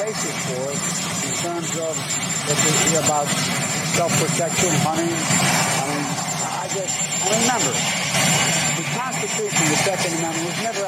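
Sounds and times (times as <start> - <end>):
presidential helicopter jet engine roaring: 0.0 - 10.8
speech: 1.8 - 5.8, 6.8 - 10.8.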